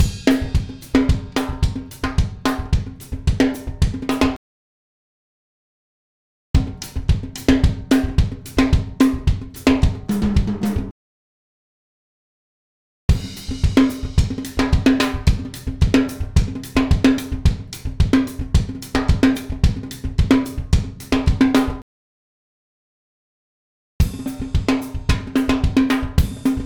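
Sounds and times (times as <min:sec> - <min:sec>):
Latin drumbeat loop: 0:00.0 - 0:04.4, 0:06.6 - 0:10.9, 0:13.1 - 0:21.8, 0:24.0 - 0:26.6.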